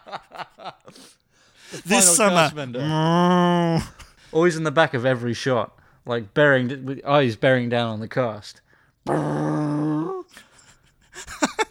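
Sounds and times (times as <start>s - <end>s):
laughter: 0.0s - 1.1s, 1.7s - 2.6s, 11.1s - 11.6s
speech: 0.1s - 10.4s
person imitating a cow mooing: 2.8s - 4.0s, 9.1s - 10.3s.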